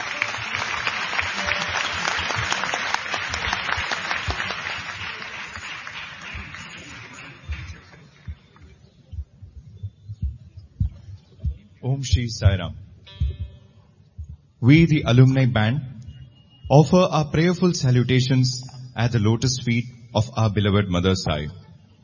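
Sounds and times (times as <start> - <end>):
large audience applause: 0.0 - 8.8
speech: 12.0 - 12.8, 14.6 - 15.9, 16.7 - 21.6.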